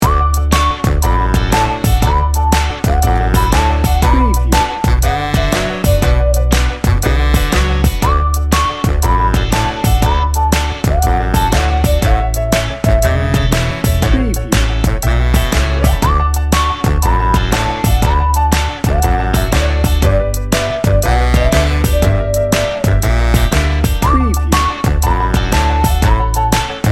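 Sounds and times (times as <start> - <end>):
stand-up bass: 0.0 - 26.9
upbeat cheerful bouncy 50s pop music: 0.0 - 26.9.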